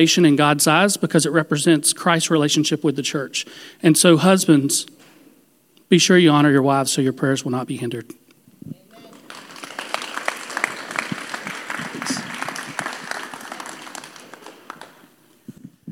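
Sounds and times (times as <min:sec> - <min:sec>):
speech: 0:00.0 - 0:05.1, 0:05.9 - 0:08.8
audience applause: 0:08.9 - 0:15.2.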